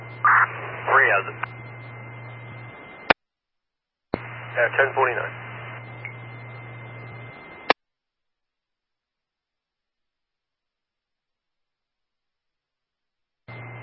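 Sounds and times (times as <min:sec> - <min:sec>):
hissing fire department radio channel static: 0:00.0 - 0:03.2, 0:04.2 - 0:07.8
radio click: 0:00.3 - 0:01.6
speech: 0:04.6 - 0:05.4.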